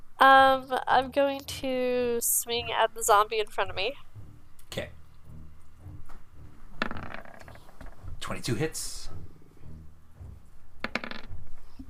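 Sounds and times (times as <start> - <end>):
speech: 0.2 - 4.1, 4.8 - 5.0, 8.3 - 9.2
dice rolling on a hard tabletop in a tabletop game: 6.8 - 8.0, 10.8 - 11.6.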